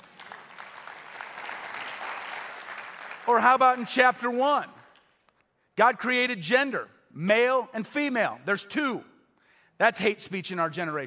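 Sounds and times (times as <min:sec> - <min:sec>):
audience applause: 0:00.0 - 0:03.4
speech: 0:03.3 - 0:04.8, 0:05.8 - 0:09.1, 0:09.8 - 0:11.0.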